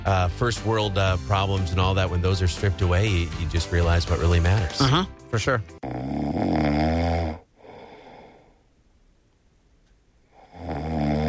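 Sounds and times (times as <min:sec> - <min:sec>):
speech: 0:00.1 - 0:05.9
person snoring: 0:05.8 - 0:08.6, 0:10.3 - 0:11.2
soft breathing: 0:07.4 - 0:08.8.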